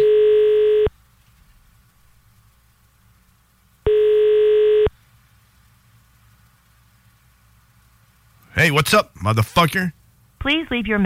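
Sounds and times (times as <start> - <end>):
buzzy electronic ringing tones of an outgoing phone call: 0.0 - 0.9, 3.9 - 5.0
faint telephone line hiss: 0.0 - 11.0
speech: 8.7 - 11.0.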